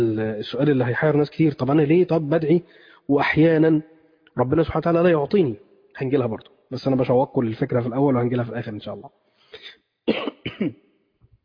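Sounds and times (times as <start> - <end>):
speech: 0.0 - 10.8
person with a mild cold coughing: 9.6 - 10.8.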